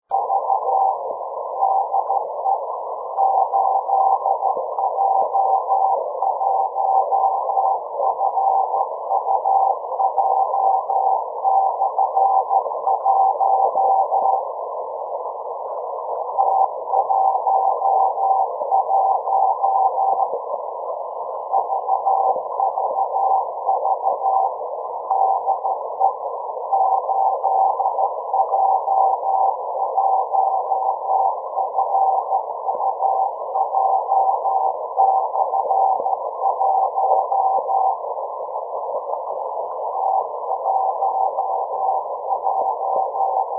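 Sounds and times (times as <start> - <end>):
CW beacon: 0.0 - 43.5.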